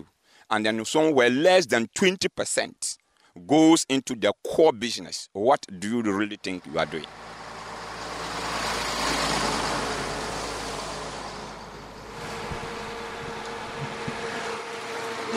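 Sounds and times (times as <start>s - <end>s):
speech: 0.5s - 7.2s
road traffic on city outskirts: 6.2s - 15.3s.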